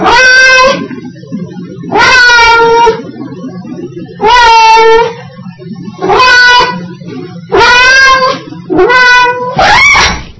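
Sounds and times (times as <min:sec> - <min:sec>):
cat giving loud saturated processed meows: 0:00.0 - 0:00.9, 0:01.9 - 0:03.1, 0:04.2 - 0:05.2, 0:06.0 - 0:06.9, 0:07.5 - 0:10.3
steady low hum: 0:00.0 - 0:10.3.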